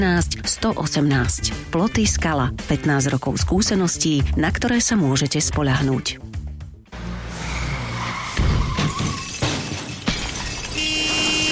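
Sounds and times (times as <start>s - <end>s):
speech: 0.0s - 6.3s
car tires skidding and squealing: 6.9s - 9.4s
car crash impacts: 7.4s - 11.5s
glass shattering in a car crash: 8.3s - 11.5s.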